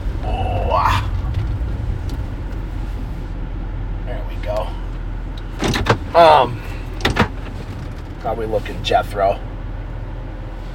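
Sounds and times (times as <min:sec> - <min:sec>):
truck engine rumbling while maneuvering into a parking spot: 0:00.0 - 0:10.7
speech: 0:08.4 - 0:09.5.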